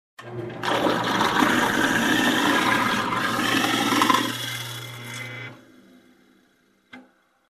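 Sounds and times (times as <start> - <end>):
electric grinder: 0.7 - 6.6.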